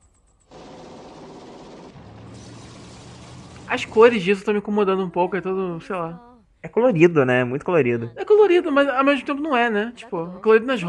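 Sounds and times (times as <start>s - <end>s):
explosions in an anime action scene: 2.0s - 4.3s
speech: 3.7s - 10.8s.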